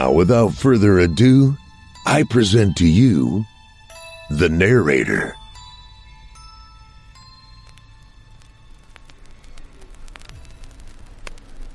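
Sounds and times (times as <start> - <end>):
speech: 0.0 - 3.5, 4.3 - 5.4
sharp crackles and clicks: 5.4 - 11.7
radio-like static hiss: 8.8 - 11.7.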